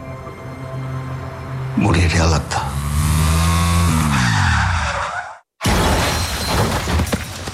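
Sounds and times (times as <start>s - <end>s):
speech: 1.8s - 2.7s
car tyres squealing while skidding on a bend: 2.9s - 5.5s
car crash with shattering debris: 5.6s - 7.5s.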